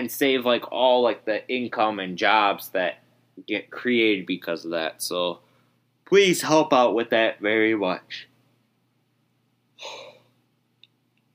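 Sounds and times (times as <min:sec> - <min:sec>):
speech: 0:00.1 - 0:05.4, 0:06.1 - 0:08.3, 0:09.8 - 0:10.0
person yawning: 0:09.8 - 0:10.2.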